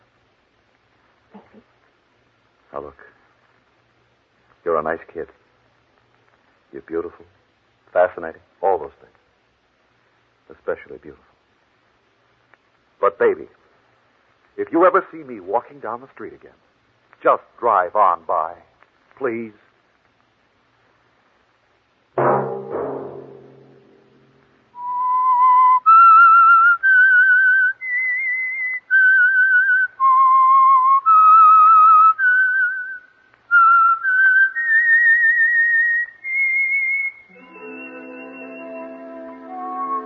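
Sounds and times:
speech: 1.4s - 1.8s, 2.7s - 3.2s, 4.6s - 5.4s, 6.7s - 9.2s, 10.5s - 11.3s, 13.1s - 13.6s, 14.6s - 16.6s, 17.2s - 19.6s
dull thump: 22.2s - 24.4s
solo whistled radio signature tune: 24.8s - 40.0s.

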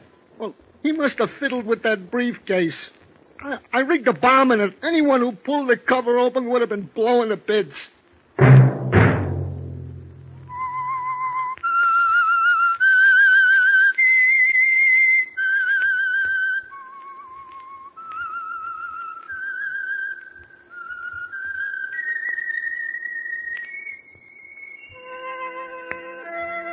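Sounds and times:
speech: 0.4s - 8.5s
low thump: 8.4s - 10.6s
lone whistled melody in a slow haunting tune: 10.4s - 26.7s.

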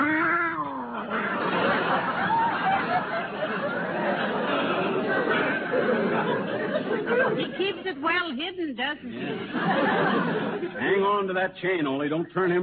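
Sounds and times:
cat yowling: 0.0s - 1.0s
laughter: 0.6s - 8.0s, 9.1s - 11.2s
speech: 7.8s - 12.6s.

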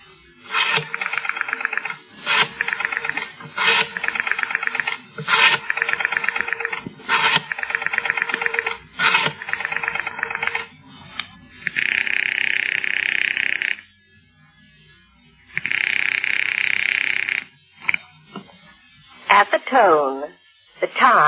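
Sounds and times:
bedside rotary telephone dialing: 0.5s - 10.7s, 11.7s - 13.8s, 15.6s - 18.0s
speech: 19.7s - 20.1s.

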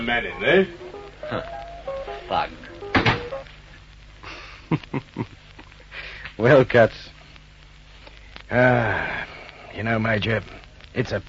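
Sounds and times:
speech: 0.0s - 1.6s, 2.3s - 2.7s, 4.7s - 5.4s, 6.4s - 7.1s, 8.5s - 11.2s
faint hiss: 0.0s - 11.2s
door being pushed shut: 2.9s - 3.4s.

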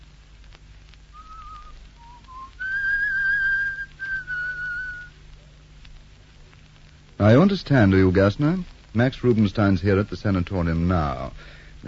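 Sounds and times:
faint low hum: 0.0s - 11.8s
person whistling a short melodic tune: 1.2s - 5.1s
speech: 7.2s - 11.8s.

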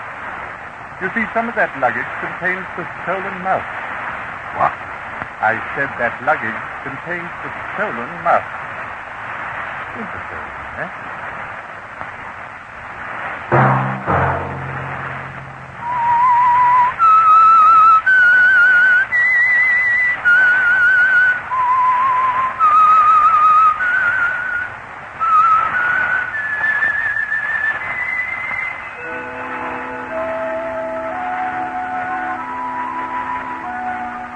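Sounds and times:
speech: 1.0s - 3.8s, 4.6s - 4.8s, 5.4s - 8.6s, 10.0s - 11.2s
whistled solo signal tune: 15.8s - 34.3s.

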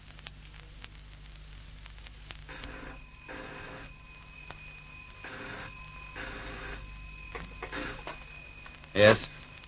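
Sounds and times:
low hum and hiss from an old recording: 0.0s - 9.6s
telephone bell ringing: 2.5s - 9.6s
speech: 9.0s - 9.4s.

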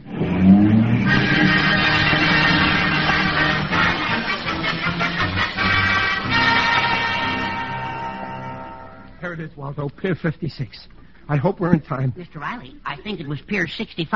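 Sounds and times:
taxi tires screeching and skidding: 0.0s - 8.0s
taxi engine revving hard: 0.0s - 8.4s
speech: 9.5s - 14.1s.

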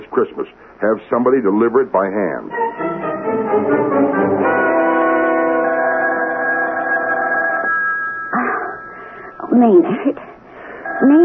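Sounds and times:
speech: 0.1s - 2.9s, 9.5s - 10.3s, 11.0s - 11.2s
telephone ringing with a bright bell-like tone: 4.2s - 10.1s, 10.7s - 11.2s.

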